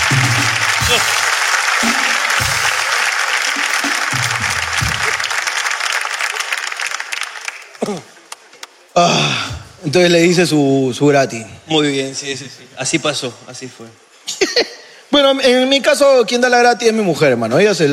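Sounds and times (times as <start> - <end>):
sustained applause from a sizable audience: 0.0 - 8.9
speech: 9.0 - 17.9.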